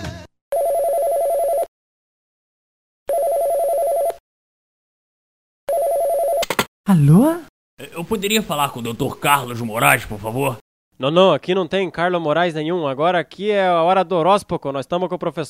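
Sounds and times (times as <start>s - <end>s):
telephone ringing: 0.5s - 1.7s, 3.1s - 4.2s, 5.7s - 6.5s
speech: 6.9s - 15.4s.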